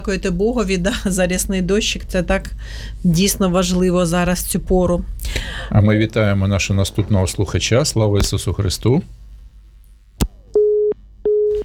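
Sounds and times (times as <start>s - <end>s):
speech: 0.0s - 9.2s
telephone busy signal: 10.6s - 11.6s.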